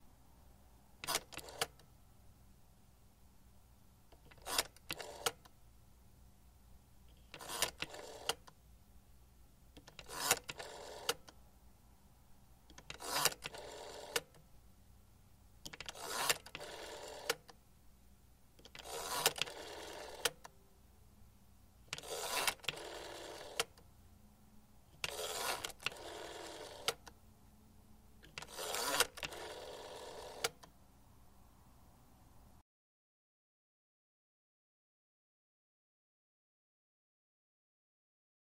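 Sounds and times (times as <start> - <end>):
classic rotary landline telephone dialing: 1.0 - 1.8, 4.2 - 5.4, 7.3 - 8.5, 9.8 - 11.3, 12.7 - 14.4, 15.7 - 17.5, 18.6 - 20.5, 21.9 - 23.8, 25.0 - 27.1, 28.2 - 30.7.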